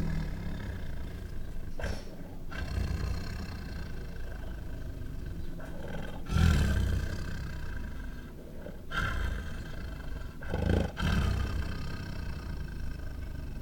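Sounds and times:
white tiger at a zoo growling and snarling: 0:00.0 - 0:13.6.

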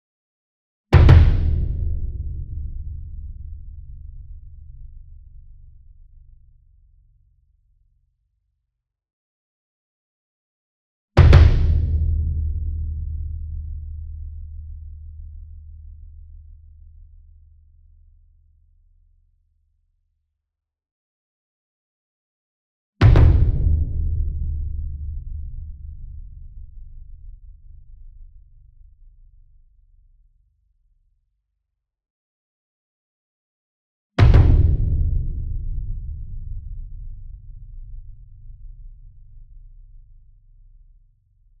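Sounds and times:
40 inch concert bass drum struck with double soft beater near: 0:01.0 - 0:06.0, 0:11.2 - 0:15.7, 0:23.0 - 0:27.9, 0:34.2 - 0:40.2.

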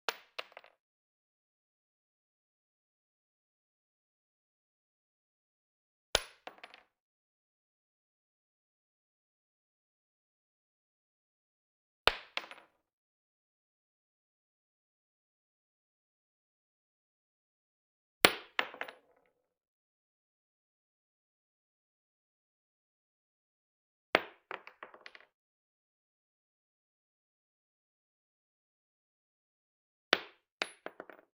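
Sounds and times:
.223 shell casing dropping on wood: 0:00.1 - 0:00.7, 0:06.2 - 0:06.8, 0:18.3 - 0:19.2, 0:24.2 - 0:25.3, 0:30.2 - 0:31.3.

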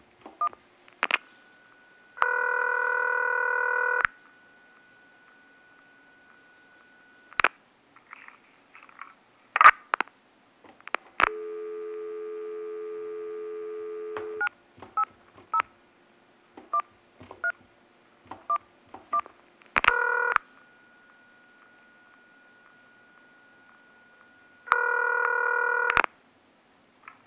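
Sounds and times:
phone speaker dial ring: 0:00.4 - 0:07.5, 0:11.2 - 0:15.7, 0:18.4 - 0:26.1.

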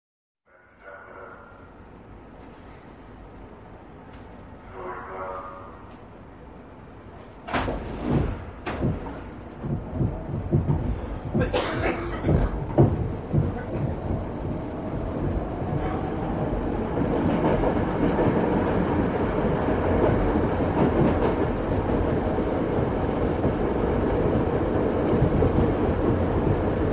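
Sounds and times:
diesel train riding into station and stopping: 0:00.4 - 0:26.9.

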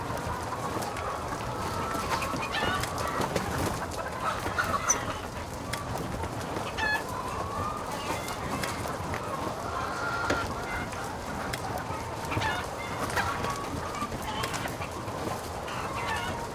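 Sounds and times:
chickens clucking: 0:00.0 - 0:16.5.

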